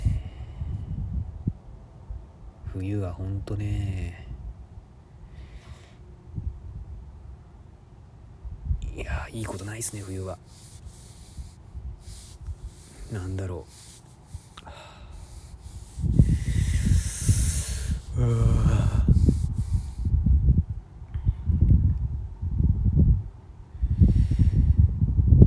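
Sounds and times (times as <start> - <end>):
gusty wind blowing outside: 0.0 - 25.4
speech: 2.8 - 4.2, 9.3 - 10.7, 13.1 - 13.9, 18.2 - 18.6
person exclaiming: 16.9 - 19.2.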